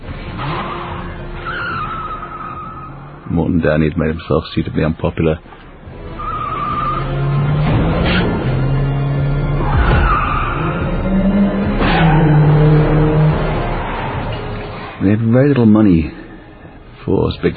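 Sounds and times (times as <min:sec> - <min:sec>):
car chase tires skidding and squealing: 0:00.0 - 0:03.3, 0:06.0 - 0:15.0
car engines revving loudly in a car chase: 0:00.0 - 0:03.4, 0:05.6 - 0:17.0
man narrating: 0:03.3 - 0:05.6, 0:15.0 - 0:17.5
speech: 0:03.3 - 0:05.6, 0:15.4 - 0:16.2, 0:17.1 - 0:17.5.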